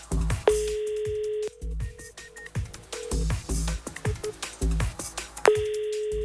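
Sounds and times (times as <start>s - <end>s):
busy rhythmic background: 0.0s - 6.2s
telephone ringback tone while calling a relay run team: 0.5s - 1.5s, 5.5s - 6.2s.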